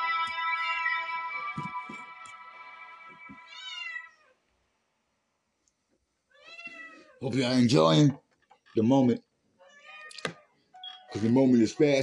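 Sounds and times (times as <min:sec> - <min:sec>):
cat meowing: 0:03.5 - 0:04.4, 0:06.3 - 0:07.2, 0:09.6 - 0:10.6
speech: 0:07.2 - 0:08.2, 0:08.8 - 0:09.2, 0:11.2 - 0:12.0.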